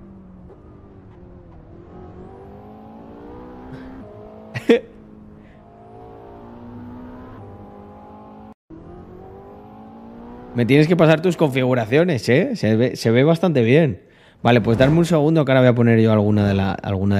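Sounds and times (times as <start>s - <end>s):
all-wheel-drive car engine in a racing video game: 0.0s - 11.0s
speech: 4.7s - 4.9s, 10.6s - 17.1s.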